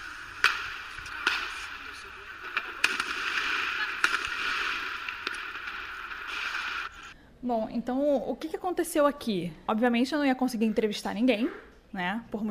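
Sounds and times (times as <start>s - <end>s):
gunshots fired by people in the street: 0.0s - 7.2s
outdoor hiss: 0.0s - 12.4s
speech: 7.4s - 12.4s.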